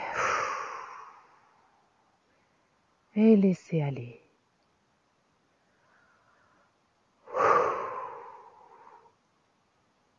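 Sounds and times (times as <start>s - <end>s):
deep breath drawn in and blown out during a guided relaxation exercise: 0.0s - 2.7s, 5.6s - 9.2s
speech: 3.2s - 4.2s.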